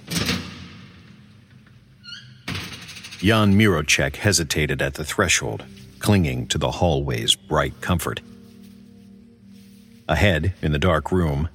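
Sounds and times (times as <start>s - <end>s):
heavy morgue door hinges creaking: 1.4s - 3.5s
speech: 3.2s - 8.3s, 10.1s - 11.5s.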